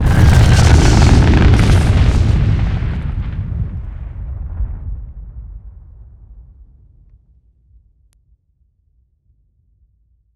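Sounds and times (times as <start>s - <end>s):
solid rocket booster launch: 0.0s - 6.2s.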